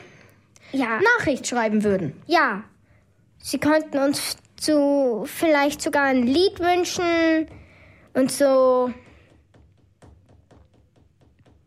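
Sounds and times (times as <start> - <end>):
speech: 0.7 - 2.7, 3.4 - 7.6, 8.2 - 9.0
fingers drumming on a tabletop: 5.6 - 11.6.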